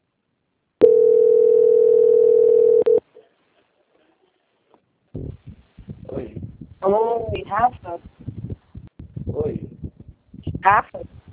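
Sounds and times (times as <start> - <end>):
electronic ringing tone of a video call: 0.8 - 3.0
speech: 6.2 - 8.2, 10.6 - 11.1.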